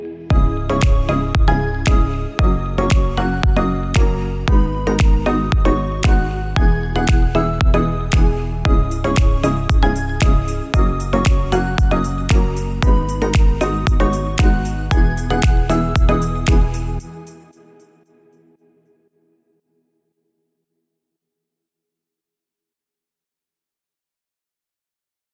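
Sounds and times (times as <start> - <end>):
full drum kit loop in F sharp: 0.3 - 17.4.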